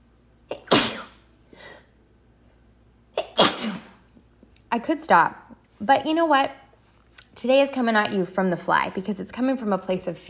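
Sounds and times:
person sneezing: 0:00.5 - 0:02.0, 0:03.2 - 0:04.0
speech: 0:04.7 - 0:06.6, 0:07.4 - 0:10.2.

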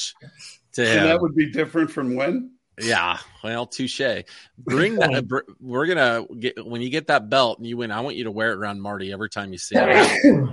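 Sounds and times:
speech: 0:00.0 - 0:10.5
laughter: 0:04.7 - 0:05.4
man sneezing: 0:09.8 - 0:10.5.

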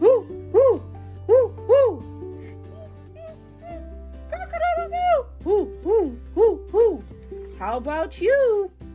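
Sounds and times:
voice imitating an owl hooting: 0:00.0 - 0:02.1, 0:02.7 - 0:07.1
speech: 0:07.6 - 0:08.8.

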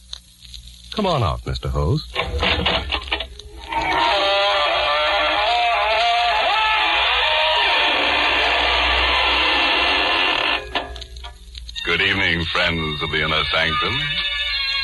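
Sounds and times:
speech: 0:01.0 - 0:02.7, 0:12.4 - 0:14.4
creaking door swinging open: 0:02.1 - 0:12.0.

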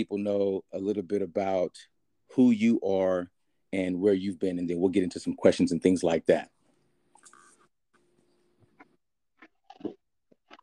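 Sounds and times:
speech: 0:00.0 - 0:06.5
person chewing food with wet crunches: 0:08.6 - 0:10.6.

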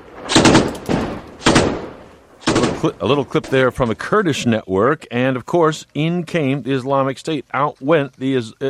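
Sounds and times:
gunfire bursts in Ramadi: 0:00.1 - 0:03.5
speech: 0:02.8 - 0:08.6.

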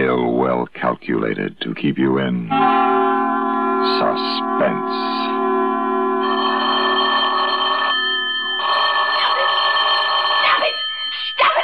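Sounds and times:
speech: 0:00.6 - 0:03.2, 0:03.8 - 0:05.5
telephone ringing with a shrill bell tone: 0:06.1 - 0:11.6.

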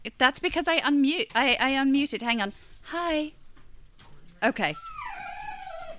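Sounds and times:
speech: 0:00.1 - 0:03.4, 0:04.4 - 0:04.9
pet dog crying: 0:04.2 - 0:05.9.

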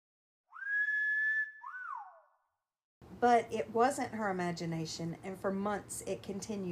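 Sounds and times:
person whistling: 0:00.5 - 0:02.4
speech: 0:03.2 - 0:06.6.

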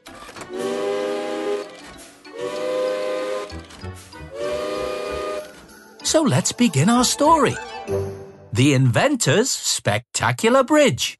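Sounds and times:
alarm clock built from old railway engine steam whistles: 0:00.5 - 0:03.6, 0:04.3 - 0:05.6
speech: 0:06.1 - 0:11.1.

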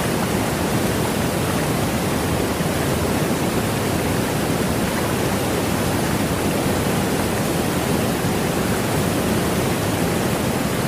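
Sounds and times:
rushing water: 0:00.0 - 0:10.8.

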